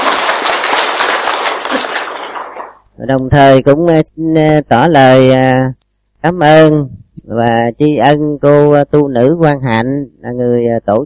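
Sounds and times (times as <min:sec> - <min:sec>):
audience applause at a Buddhist gathering in a remote rural area: 0:00.0 - 0:02.8
speech: 0:03.0 - 0:11.0.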